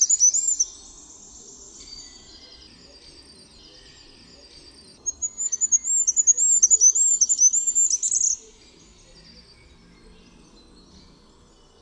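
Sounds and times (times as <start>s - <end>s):
Goldcrest singing high thin notes: 0.0s - 11.8s.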